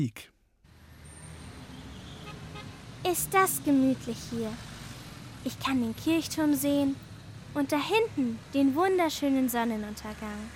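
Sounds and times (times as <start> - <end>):
speech: 0.0 - 0.3, 3.0 - 4.7, 5.4 - 7.0, 7.6 - 10.5
street traffic noise heard from a rooftop: 0.7 - 10.5
car horn: 1.7 - 2.8.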